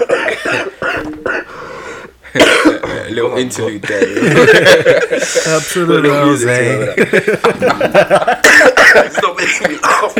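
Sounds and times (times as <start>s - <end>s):
person coughing: 0.0s - 1.6s, 2.3s - 3.1s, 8.4s - 10.1s
speech: 2.3s - 10.1s
laughter: 3.7s - 10.1s.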